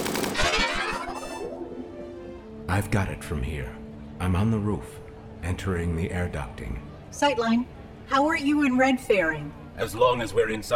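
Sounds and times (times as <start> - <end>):
rapid automatic gunfire: 0.0 - 1.0
speech: 2.7 - 10.7.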